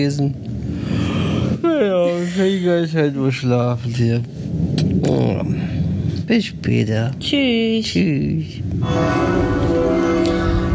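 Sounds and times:
speech: 0:00.0 - 0:00.5, 0:02.3 - 0:05.7, 0:06.3 - 0:10.3
low rumble: 0:00.0 - 0:10.7
church bells ringing on village square: 0:08.8 - 0:10.7.

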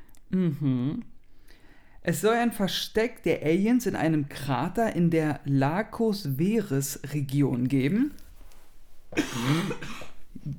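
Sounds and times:
speech: 0:00.3 - 0:01.1, 0:02.0 - 0:08.2, 0:09.1 - 0:10.5
harsh raspy cough: 0:09.2 - 0:10.5.

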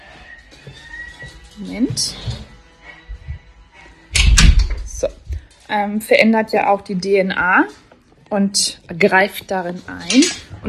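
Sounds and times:
speech: 0:01.6 - 0:02.5, 0:05.7 - 0:10.6
door shut with a loud thudding bang: 0:04.2 - 0:05.0.

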